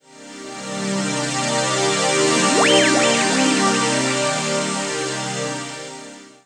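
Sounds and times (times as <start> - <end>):
jungle synth pad: 1.1 - 4.8.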